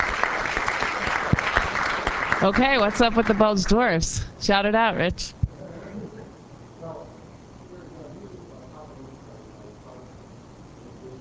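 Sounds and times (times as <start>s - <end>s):
audience clapping after a talk: 0.0s - 4.1s
speech: 2.4s - 5.4s.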